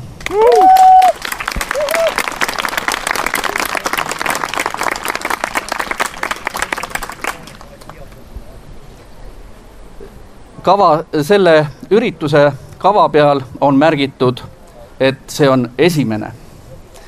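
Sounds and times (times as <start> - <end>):
audience applause: 0.0 - 8.2
audience whoops and whistles: 0.2 - 2.2
speech: 10.7 - 16.4.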